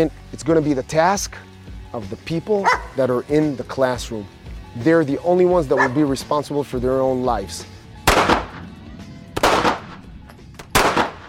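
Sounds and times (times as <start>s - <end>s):
speech: 0.0s - 8.3s
gunshots fired into a bag: 8.0s - 8.7s, 9.4s - 11.2s.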